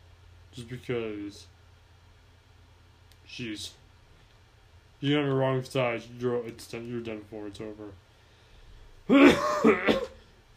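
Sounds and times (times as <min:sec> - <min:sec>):
speech: 0:00.6 - 0:01.6, 0:03.3 - 0:03.8, 0:05.0 - 0:08.0, 0:09.1 - 0:10.1
loud throaty cough: 0:09.1 - 0:10.3.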